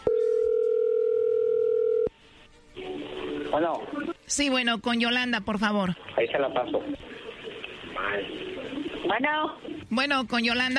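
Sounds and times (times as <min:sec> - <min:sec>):
telephone dial tone: 0:00.1 - 0:02.1
speech: 0:03.5 - 0:07.1, 0:08.0 - 0:10.7.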